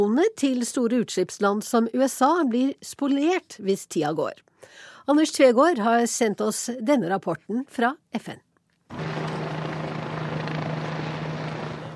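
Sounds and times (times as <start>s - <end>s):
speech: 0.0s - 9.0s
helicopter hovering low over the UN headquarters in Manhattan New York: 8.9s - 11.9s
sustained low helicopter engine hum: 8.9s - 11.9s.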